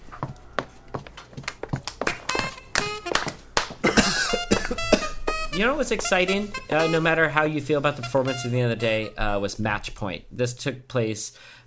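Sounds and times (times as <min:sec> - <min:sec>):
light applause from a small group: 0:00.3 - 0:07.1
people coughing: 0:03.8 - 0:05.6
speech: 0:05.6 - 0:11.6.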